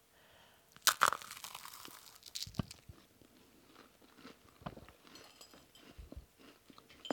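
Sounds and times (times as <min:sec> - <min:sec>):
crunchy bite into a pistachio macaron: 0:00.7 - 0:03.1
chewing and crunching a pistachio macaron: 0:00.8 - 0:07.1.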